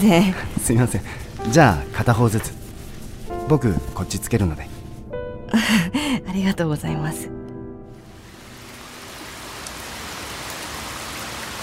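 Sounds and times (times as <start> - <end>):
speech: 0.0 - 2.6, 3.5 - 4.7, 5.5 - 7.4
rainy season rain spattering on a surface: 8.0 - 11.6.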